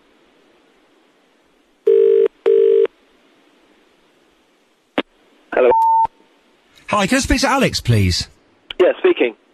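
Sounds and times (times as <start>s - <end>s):
office telephone ringing with electronic double rings: 1.9s - 2.9s
speech: 6.9s - 8.4s, 9.2s - 9.4s.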